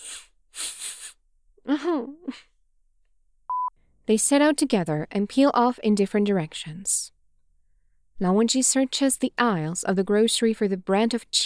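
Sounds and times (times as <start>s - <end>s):
person sneezing: 0.0s - 1.2s
sharp breathy inhales before a sneeze: 0.0s - 1.2s
speech: 4.1s - 7.2s, 8.2s - 11.4s.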